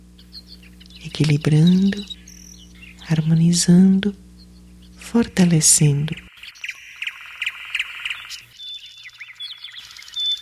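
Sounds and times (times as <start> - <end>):
birds singing and chirping: 0.0 - 10.3
speech: 1.0 - 2.2, 3.1 - 4.2, 5.1 - 6.3.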